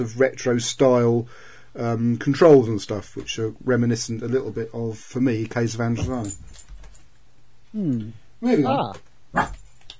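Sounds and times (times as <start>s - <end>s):
speech: 0.0s - 6.6s, 7.7s - 9.6s
dog barking: 9.4s - 9.6s.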